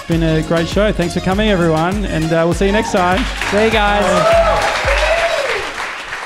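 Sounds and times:
speech: 0.1 - 4.4
audience clapping: 2.7 - 6.2.

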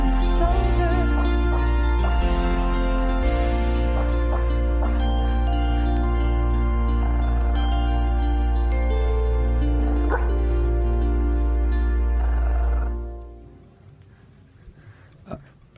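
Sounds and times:
sustained musical backing: 0.0 - 14.2
dog growling: 3.9 - 8.8, 9.4 - 13.2
dog barking: 4.0 - 5.2, 10.0 - 10.4.

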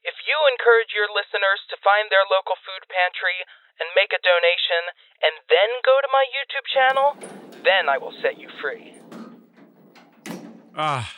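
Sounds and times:
speech: 0.3 - 9.2, 10.8 - 11.1
door being unlocked with a sharp clunk: 6.9 - 10.8.

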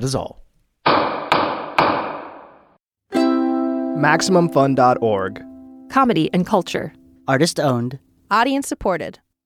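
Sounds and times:
speech: 0.0 - 1.0, 4.0 - 9.2
gavel banging: 0.9 - 2.6.

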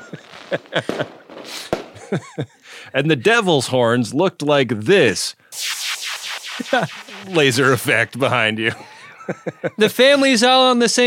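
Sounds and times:
laughter: 0.0 - 1.2, 2.0 - 2.6, 8.7 - 10.4
fireworks popping and cracking: 0.0 - 2.1, 5.6 - 8.4
speech: 0.1 - 5.4, 6.6 - 11.0.

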